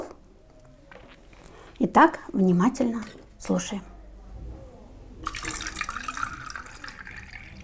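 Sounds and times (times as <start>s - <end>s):
speech: 1.9s - 3.9s
water pouring into a container: 5.2s - 7.6s.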